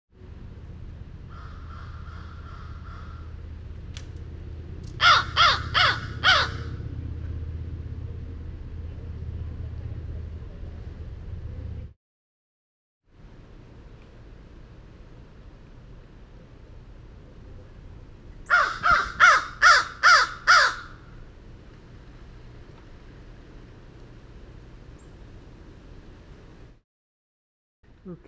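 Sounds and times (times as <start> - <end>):
steady low hum: 0.2 - 12.0, 13.1 - 26.8
crow giving harsh raspy caws: 1.3 - 3.4, 5.0 - 6.8, 18.5 - 21.1
speech: 28.1 - 28.2.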